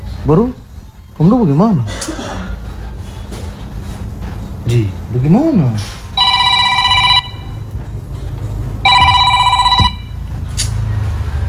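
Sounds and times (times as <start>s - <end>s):
low rumbling background: 0.0s - 11.4s
speech: 0.2s - 0.6s, 1.2s - 2.2s, 4.7s - 6.0s
telephone ringing in electronic bursts: 6.2s - 7.7s, 8.8s - 10.2s.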